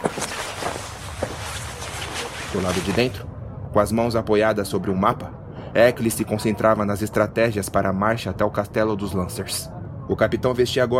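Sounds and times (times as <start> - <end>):
footsteps walking into a tent: 0.0 - 3.1
speech: 2.5 - 10.9.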